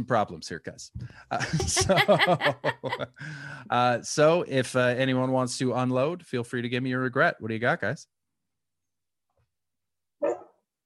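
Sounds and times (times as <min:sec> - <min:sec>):
speech: 0:00.0 - 0:08.2
laughter: 0:01.3 - 0:03.6
dog barking: 0:10.2 - 0:10.6.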